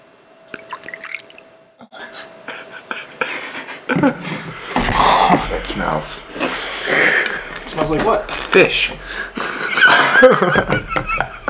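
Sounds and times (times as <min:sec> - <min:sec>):
blended Canadian whiskey being poured into a glass: 0:00.5 - 0:01.5
small whiskey drips: 0:00.5 - 0:01.6
laughter: 0:02.0 - 0:11.4
speech: 0:03.9 - 0:09.4, 0:10.2 - 0:11.2.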